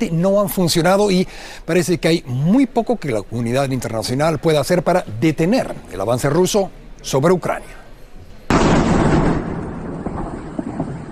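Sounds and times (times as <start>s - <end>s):
speech: 0.0s - 7.8s
crackling debris: 8.5s - 11.1s
heavy explosion from war footage: 8.5s - 11.1s.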